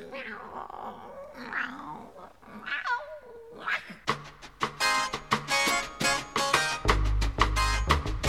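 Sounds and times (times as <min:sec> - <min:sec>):
cat meowing: 0:00.0 - 0:04.1
rhythmic music with a steady beat: 0:04.1 - 0:08.2.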